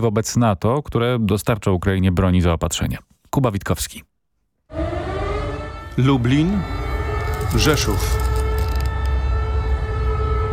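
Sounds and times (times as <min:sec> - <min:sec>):
speech: 0:00.0 - 0:04.1, 0:06.0 - 0:06.8, 0:07.5 - 0:08.2
air-raid sirens sounding over a city in eastern Poland during an alert: 0:04.7 - 0:10.5.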